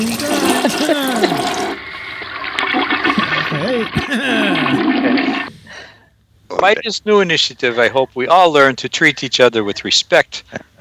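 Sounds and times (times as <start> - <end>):
laughter: 0.0 - 2.0, 3.1 - 5.5, 9.6 - 10.8
toilet flushing with gurgling rush of water: 0.0 - 5.5
water hissing as it refills the toilet tank: 0.0 - 5.5
speech: 3.9 - 5.0, 6.6 - 10.8.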